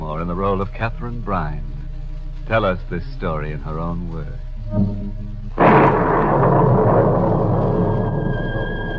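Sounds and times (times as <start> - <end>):
speech: 0.4 - 1.7, 2.5 - 6.2
thunder crash and rumble at night: 5.6 - 8.9.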